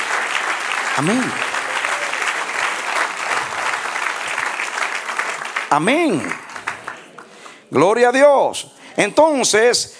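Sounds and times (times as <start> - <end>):
audience applause from a large group: 0.0 - 7.6
speech: 1.0 - 1.5, 5.7 - 6.4, 7.7 - 9.9.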